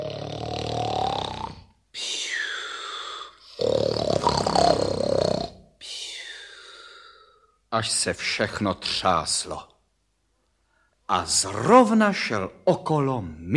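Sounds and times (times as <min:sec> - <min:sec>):
voice imitating loud heavy snoring of a wolf: 0:00.0 - 0:01.7, 0:02.3 - 0:05.7
speech: 0:07.8 - 0:09.7, 0:11.1 - 0:13.5.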